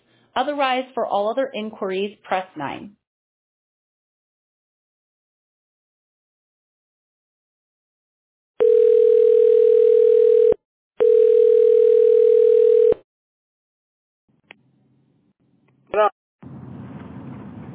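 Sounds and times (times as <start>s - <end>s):
speech: 0.4s - 3.0s
telephone dial tone after a dropped call: 8.6s - 13.0s.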